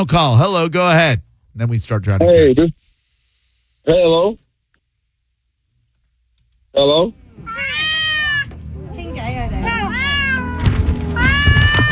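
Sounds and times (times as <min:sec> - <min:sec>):
speech: 0:00.0 - 0:02.8, 0:03.9 - 0:04.4, 0:06.8 - 0:07.8
rumble: 0:07.1 - 0:11.9
cat meowing: 0:07.2 - 0:11.9
thumps: 0:10.5 - 0:11.9.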